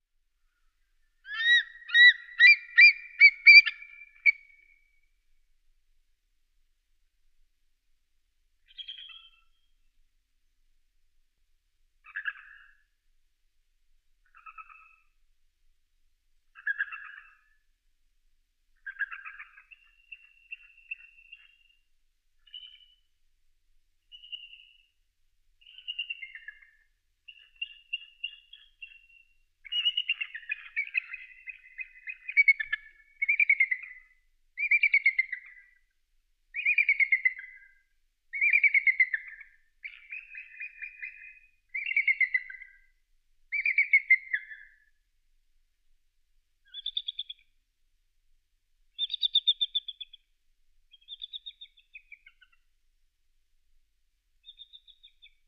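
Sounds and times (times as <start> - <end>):
bald eagle chirps and calls: 1.2 - 4.8, 12.0 - 12.8, 14.2 - 15.0, 16.6 - 17.5, 18.8 - 21.8, 25.6 - 35.8, 36.5 - 37.7, 38.3 - 42.9, 43.5 - 44.9, 46.6 - 47.4, 48.9 - 50.3, 50.9 - 52.6, 54.4 - 55.4.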